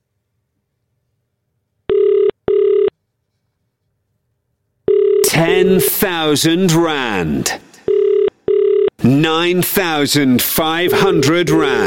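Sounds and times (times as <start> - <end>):
outgoing call ringback tone purring: 1.9 - 2.9, 4.9 - 5.4, 7.9 - 8.9
speech: 5.4 - 7.7, 9.0 - 11.8.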